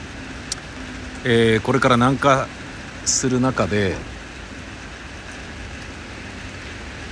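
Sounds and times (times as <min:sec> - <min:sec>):
steady rain pattering on surfaces: 0:00.0 - 0:07.1
speech: 0:01.2 - 0:04.2.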